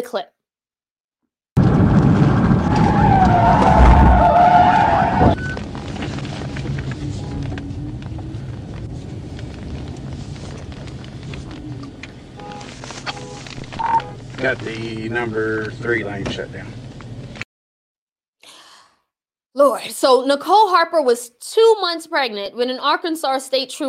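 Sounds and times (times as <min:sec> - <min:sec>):
speech: 0:00.0 - 0:00.4, 0:14.4 - 0:16.8, 0:19.6 - 0:23.8
car tire screeching as car skids during police PIT maneuver: 0:01.6 - 0:17.4
road and engine rumble: 0:01.6 - 0:17.4.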